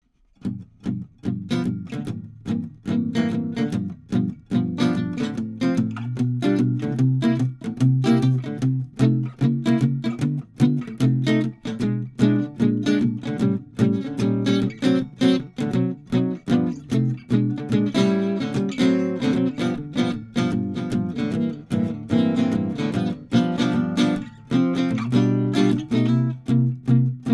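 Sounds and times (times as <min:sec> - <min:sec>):
jazz on a Gibson L7 guitar: 0:00.4 - 0:27.3.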